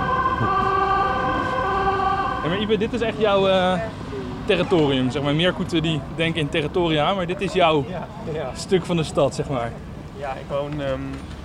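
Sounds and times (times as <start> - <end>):
emergency vehicle siren wailing in the street by the Stopera: 0.0 - 4.1
low rumble of road traffic: 0.0 - 11.4
speech: 2.5 - 11.4.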